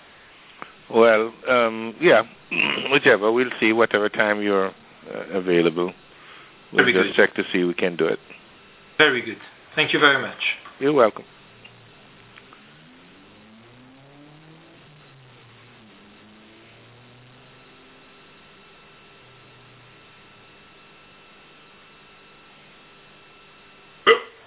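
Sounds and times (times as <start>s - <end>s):
low electrical hum: 0.0s - 24.4s
speech: 0.9s - 6.0s, 6.7s - 8.4s, 9.0s - 11.4s
person hiccuping: 2.5s - 2.9s, 24.1s - 24.4s.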